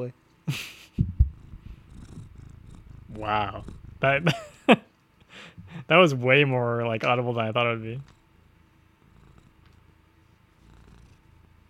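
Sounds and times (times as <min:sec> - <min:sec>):
speech: 0:00.0 - 0:01.1, 0:03.2 - 0:04.8, 0:05.4 - 0:08.1
quiet hiss: 0:00.0 - 0:11.6
cat purring: 0:01.0 - 0:04.7, 0:07.4 - 0:11.6.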